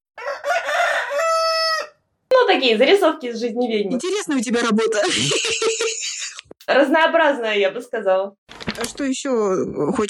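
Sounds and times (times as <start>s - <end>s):
rooster crowing: 0.2s - 2.1s
speech: 2.6s - 10.0s
laughter: 4.0s - 6.5s.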